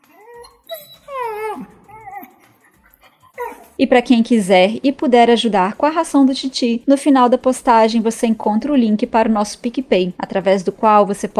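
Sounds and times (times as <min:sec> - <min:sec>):
dog whimpering and yipping: 0:00.0 - 0:03.8
speech: 0:03.8 - 0:11.3.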